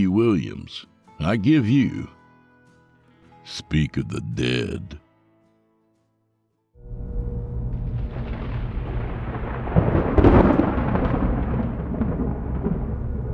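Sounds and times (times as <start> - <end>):
speech: 0.0 - 2.2, 3.4 - 5.0
deep low rumbling thunder: 6.9 - 13.3.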